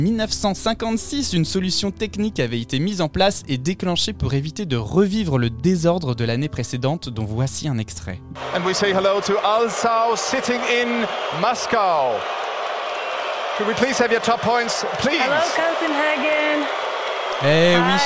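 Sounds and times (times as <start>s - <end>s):
speech: 0.0s - 12.4s, 13.6s - 16.8s, 17.4s - 18.0s
large indoor concert hall audience booing: 8.4s - 18.0s
single amplified voice speaking in a concert hall: 17.4s - 18.0s.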